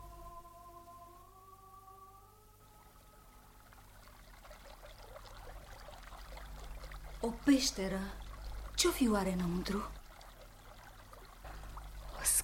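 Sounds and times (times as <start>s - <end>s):
steady faint tones: 0.0s - 12.4s
flowing river water: 2.6s - 12.4s
speech: 7.2s - 8.2s, 8.8s - 10.0s.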